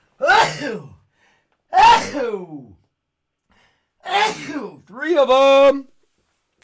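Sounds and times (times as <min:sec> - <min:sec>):
loud sneezes: 0:00.2 - 0:01.0, 0:01.7 - 0:02.8, 0:04.0 - 0:04.8
speech: 0:00.5 - 0:01.0, 0:01.7 - 0:02.8, 0:04.0 - 0:05.9.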